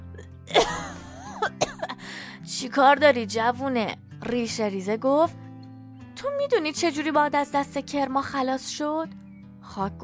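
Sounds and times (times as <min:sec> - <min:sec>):
person coughing: 0:00.5 - 0:02.0
speech: 0:02.5 - 0:05.4, 0:06.2 - 0:10.0.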